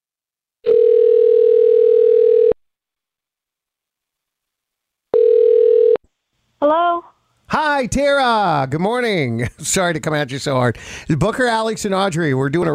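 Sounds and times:
telephone tone on an outgoing call: 0.6 - 2.6, 5.1 - 6.0
speech: 7.5 - 12.7.

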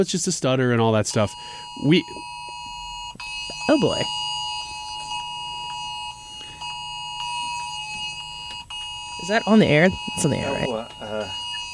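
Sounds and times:
speech: 0.0 - 2.3, 3.7 - 4.2, 9.3 - 11.4
weather alert alarms on phones in Illinois blaring: 0.7 - 11.7.

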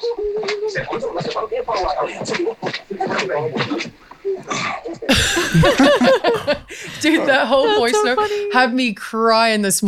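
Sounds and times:
speech: 0.0 - 2.8, 7.4 - 9.8
laughter: 0.4 - 8.7
heavy breathing over a phone line: 6.6 - 7.2, 8.2 - 8.5.

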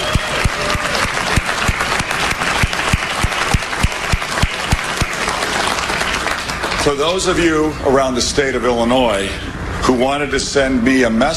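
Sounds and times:
audience clapping: 0.0 - 7.4
speech: 6.8 - 11.3.

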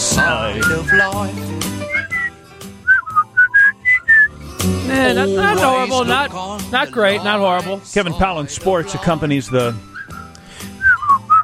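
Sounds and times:
person whistling a short bouncy melody: 0.1 - 4.3, 9.9 - 11.4
speech: 0.2 - 2.1, 4.6 - 9.9.

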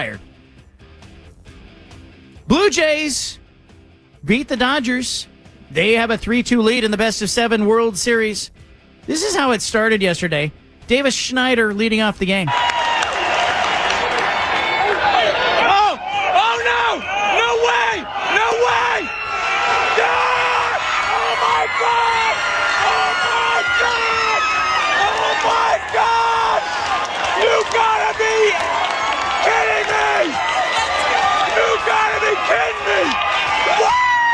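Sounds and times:
speech: 0.0 - 0.3, 2.5 - 3.4, 4.2 - 12.7
baseball stadium crowd noise: 12.5 - 34.3
father yelling and whooping at a home run in a baseball stadium: 14.6 - 34.3.

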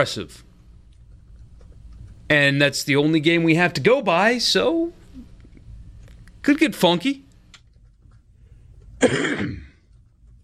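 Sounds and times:
speech: 0.0 - 0.5, 2.3 - 5.0, 6.4 - 7.2, 9.0 - 9.6
harsh throaty cough: 9.0 - 9.8.

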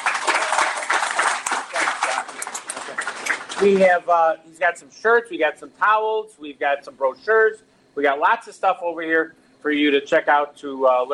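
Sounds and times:
audience applause: 0.0 - 3.8
speech: 3.6 - 11.1.

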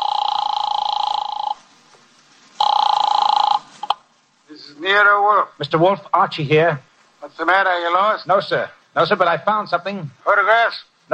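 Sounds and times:
office telephone ringing after dialing: 0.0 - 1.7, 2.6 - 4.0
speech: 4.8 - 10.9.

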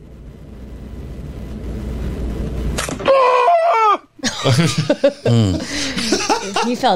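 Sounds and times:
low rumble: 0.0 - 6.9
man screaming in pain as beard wax is ripped off: 3.0 - 4.1
laughter: 4.2 - 6.9
speech: 4.4 - 6.9.

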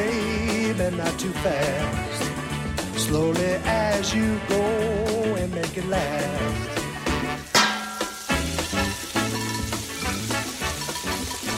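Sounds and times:
rhythmic musical backing with repeated punchy notes: 0.0 - 11.5
speech: 1.2 - 2.0, 3.1 - 6.8
food sizzling in a hot frying pan: 6.8 - 11.5.

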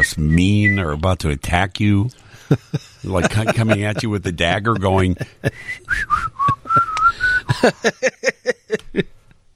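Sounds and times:
speech: 0.1 - 6.5, 7.5 - 9.2
laughter: 2.5 - 5.6, 6.5 - 9.2
person whistling a bright cheerful tune: 5.6 - 7.6.

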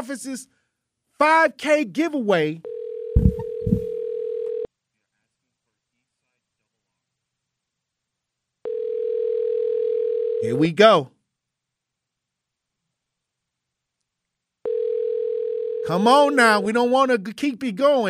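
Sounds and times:
speech: 0.1 - 0.6, 1.2 - 2.7, 10.4 - 11.2, 15.8 - 18.0
telephone line ringing: 2.6 - 4.7, 8.6 - 10.6, 14.6 - 16.6.

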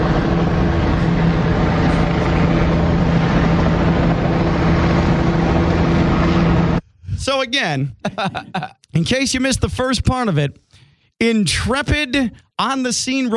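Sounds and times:
helicopters flying overhead: 0.0 - 6.8
speech: 7.5 - 10.6, 11.2 - 13.3
laughter: 7.9 - 8.9.

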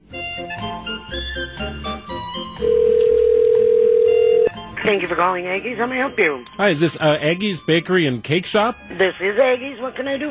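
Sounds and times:
soft music-like sounds: 0.0 - 10.2
telephone call to a bakery ringing out: 2.6 - 4.6
speech: 4.8 - 10.2.

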